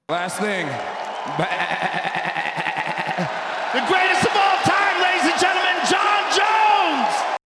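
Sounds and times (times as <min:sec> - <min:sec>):
crowd noise: 0:00.0 - 0:07.4
speech: 0:00.1 - 0:02.5
laughter: 0:01.2 - 0:05.0
man imitating goat bleats after winning a fight: 0:01.4 - 0:03.3.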